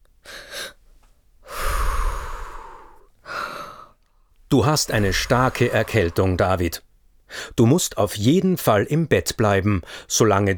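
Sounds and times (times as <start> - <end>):
patient with a heavy cold breathing deeply during stethoscope check: 1.4 - 4.0, 4.6 - 7.6
speech: 4.5 - 10.5.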